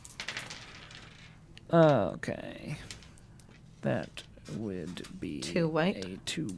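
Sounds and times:
dice clattering across a hard tabletop: 0.0 - 2.0
speech: 1.7 - 3.0, 3.8 - 6.5.

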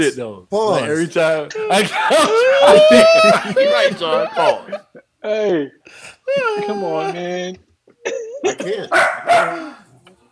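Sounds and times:
speech: 0.0 - 9.8
laughter: 1.5 - 5.1, 6.3 - 7.2
dog barking with loud yelping barks: 8.9 - 9.8.

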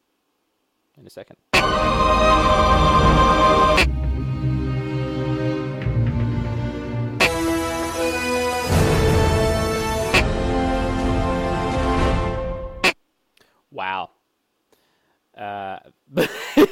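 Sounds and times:
speech: 1.0 - 2.6
video game theme music: 1.6 - 12.8.

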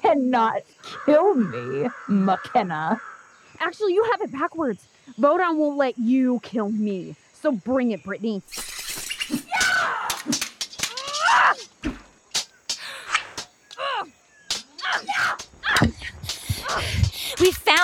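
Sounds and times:
speech: 0.1 - 8.7, 17.4 - 17.8
sharp cracks, smacks and crashing impacts: 8.6 - 13.8, 14.5 - 17.8
banshee scream with shrill wavering shrieks: 9.3 - 11.7, 14.7 - 17.0.

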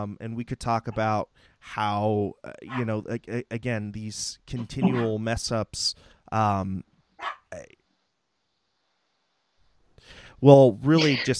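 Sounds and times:
speech: 0.0 - 7.8, 10.1 - 11.3
puppy barking: 2.7 - 2.9, 4.6 - 5.1, 7.2 - 7.5.

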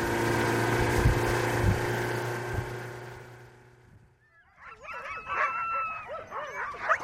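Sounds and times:
steady motor hum: 0.0 - 4.2
chorus of huskies barking, yipping and howling restlessly: 4.2 - 7.0.

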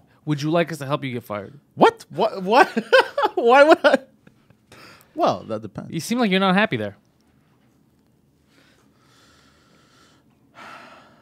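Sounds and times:
speech: 0.2 - 4.1, 5.2 - 7.0
breathy exhalations blown into a microphone: 4.7 - 5.2, 8.4 - 11.1.

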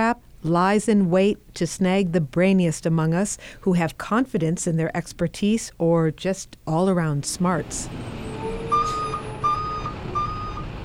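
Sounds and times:
speech: 0.0 - 8.4
truck engine rumbling: 7.4 - 10.8
truck reversing alarm beeping: 8.2 - 10.8.

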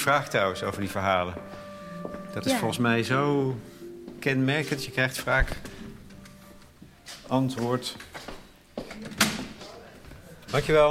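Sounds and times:
speech: 0.0 - 5.8, 7.3 - 8.3, 10.5 - 10.8
door opening and shutting: 8.9 - 9.6.

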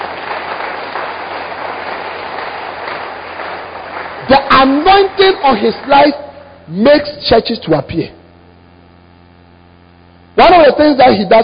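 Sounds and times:
church congregation clapping hands in praise: 0.0 - 6.4
speech: 4.3 - 8.2, 10.4 - 11.4.

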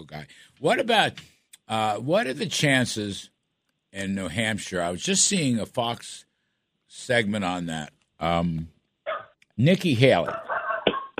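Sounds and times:
speech: 0.0 - 3.3, 3.9 - 6.3, 6.9 - 8.8, 9.6 - 10.5
dog barking: 9.1 - 9.4, 10.3 - 11.1.

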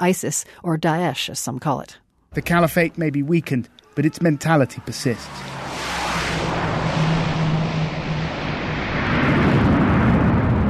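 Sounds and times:
speech: 0.0 - 5.6
heavy military transport plane touching down on a dirt runway: 2.4 - 10.6.

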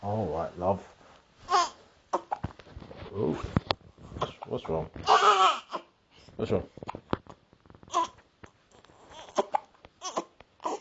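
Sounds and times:
speech: 0.0 - 1.0, 3.2 - 3.6, 4.5 - 5.5, 6.4 - 6.9
baby girl with hiccups fussing and whimpering: 1.5 - 2.5, 4.1 - 6.0, 7.9 - 8.2, 9.0 - 10.7.

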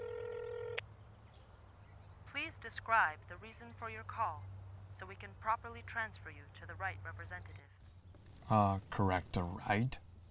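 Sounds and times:
phone keypad tone: 0.0 - 0.8
speech: 2.5 - 7.8, 8.5 - 10.0.

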